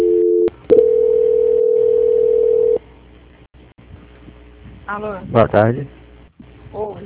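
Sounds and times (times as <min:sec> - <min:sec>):
telephone line tone during a call transfer: 0:00.0 - 0:02.8
speech: 0:04.9 - 0:06.0.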